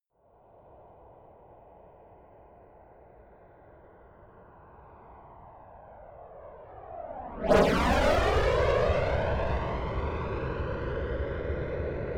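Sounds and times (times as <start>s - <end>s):
F-22 Raptor military jet flying by fast close: 6.8s - 12.0s.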